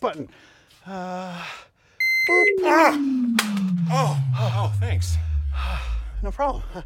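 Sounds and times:
speech: 0.0 - 1.7, 2.3 - 6.8
steady high-pitched electronic beep: 2.0 - 6.1
lower buzzy tone: 2.0 - 6.8
falling drone: 2.3 - 6.8
voice-like sounds: 2.3 - 6.8.

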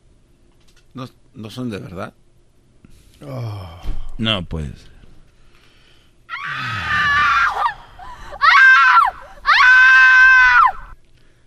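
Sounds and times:
speech: 1.0 - 2.2, 3.2 - 4.9
loud shrill screams: 6.3 - 11.0.

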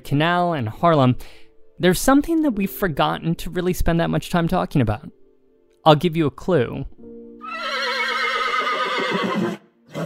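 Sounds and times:
speech: 0.1 - 5.2, 5.8 - 7.0
horse neighing: 7.4 - 10.0.

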